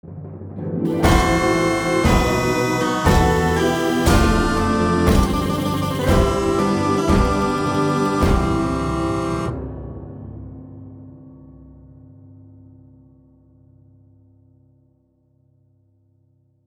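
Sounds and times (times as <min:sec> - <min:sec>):
wedding march music: 0:00.9 - 0:09.6.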